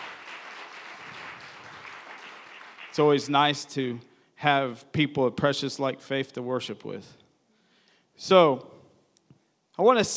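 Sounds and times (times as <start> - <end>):
room full of people clapping in welcome: 0.0 - 3.3
speech: 3.0 - 7.2, 8.2 - 8.7, 9.8 - 10.1.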